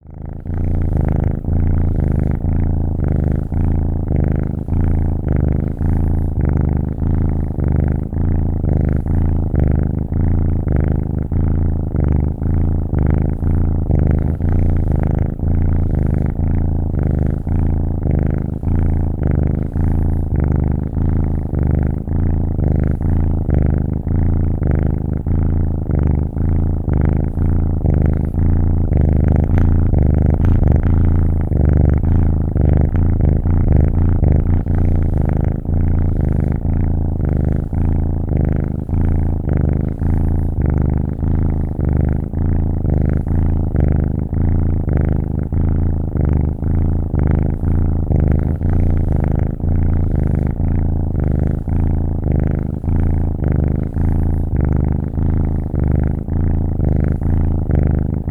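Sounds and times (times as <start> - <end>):
kitten purring: 0.0 - 58.3.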